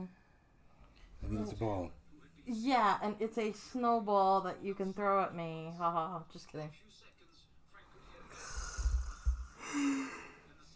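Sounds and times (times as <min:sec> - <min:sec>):
speech: 0:00.0 - 0:00.2, 0:01.2 - 0:07.1, 0:09.7 - 0:10.2
person yawning with a low voiced groan: 0:08.3 - 0:10.4.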